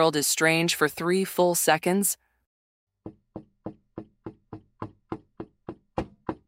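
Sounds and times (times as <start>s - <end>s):
speech: 0.0s - 2.2s
knocking on a wooden door: 3.0s - 6.4s.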